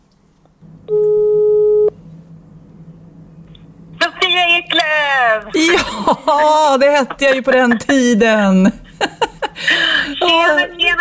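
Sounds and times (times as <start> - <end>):
low hum: 0.0 - 10.9
electronic ringback tone of an outgoing phone call: 0.9 - 1.9
speech: 5.5 - 8.8, 9.6 - 10.9
laughter: 5.6 - 10.2.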